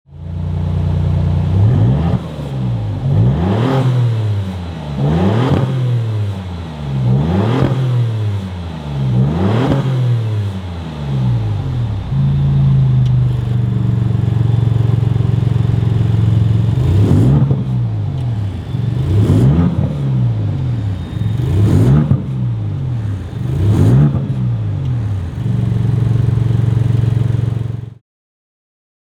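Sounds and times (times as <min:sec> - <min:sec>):
Maserati MC20 car engine: 0:00.1 - 0:28.0.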